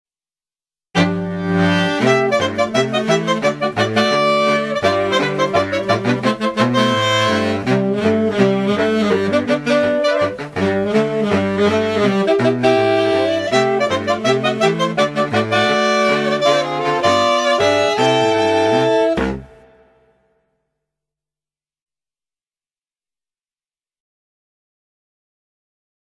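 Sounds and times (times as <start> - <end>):
jazz band playing a TV theme: 1.0 - 19.7
saxophone: 1.0 - 20.2.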